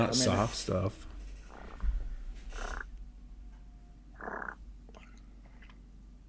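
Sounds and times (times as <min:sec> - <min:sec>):
speech: 0:00.0 - 0:01.1
turkey purrs on a four-reed latex mouth diaphragm call: 0:02.5 - 0:03.0, 0:04.1 - 0:05.1.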